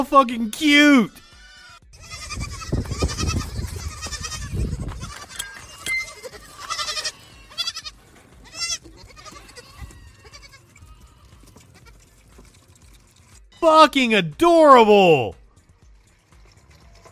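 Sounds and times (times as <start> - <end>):
speech: 0.0 - 1.2, 13.6 - 15.4
several goats bleating: 0.0 - 12.2.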